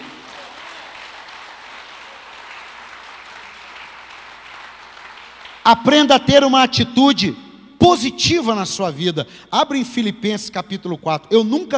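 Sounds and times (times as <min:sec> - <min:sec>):
audience applause: 0:00.0 - 0:05.6
speech: 0:05.7 - 0:11.7.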